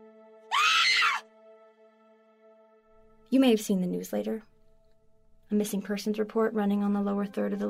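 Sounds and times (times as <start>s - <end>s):
person screaming in terror: 0.5s - 1.2s
speech: 3.3s - 4.5s, 5.5s - 7.6s.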